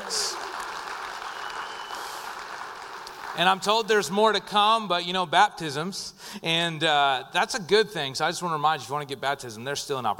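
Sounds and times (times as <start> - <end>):
church audience applause: 0.0 - 3.8
speech: 3.4 - 10.1.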